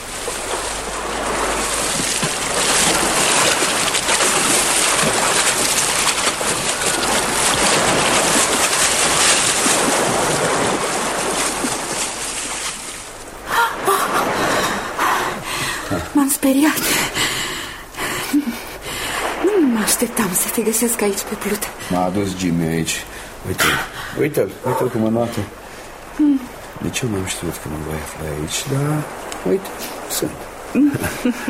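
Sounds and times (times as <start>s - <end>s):
calm sea waves: 0.0s - 31.4s
breezy airy hiss: 11.8s - 31.4s
speech: 20.6s - 25.6s, 26.9s - 31.4s.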